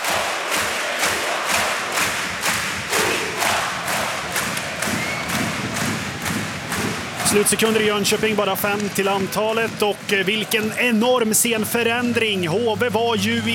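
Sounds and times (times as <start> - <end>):
crowd singing at an ice hockey game in Gothenburg: 0.0 - 13.5
speech: 7.3 - 13.5.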